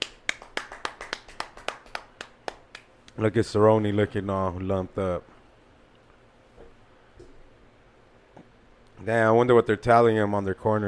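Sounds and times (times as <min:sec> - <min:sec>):
person clapping hands: 0:00.0 - 0:02.9
speech: 0:03.2 - 0:05.3, 0:09.0 - 0:10.8.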